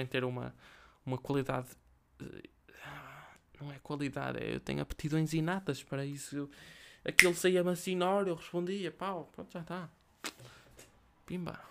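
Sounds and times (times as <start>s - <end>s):
speech: 0.0s - 10.6s, 11.3s - 11.6s
sharp finger snap: 7.2s - 7.4s.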